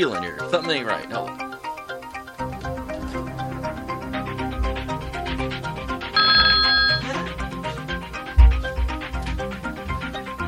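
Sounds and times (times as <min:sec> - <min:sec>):
speech: 0:00.0 - 0:01.4
music: 0:00.0 - 0:10.4
telephone ringing with an incoming call: 0:06.2 - 0:07.1.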